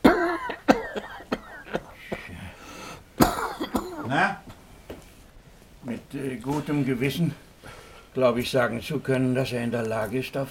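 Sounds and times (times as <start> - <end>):
man coughing on command during a medical examination: 0.0 - 2.6, 3.2 - 4.3
throaty breaths: 1.6 - 3.2, 7.6 - 8.2
speech: 6.2 - 7.4, 8.2 - 10.4.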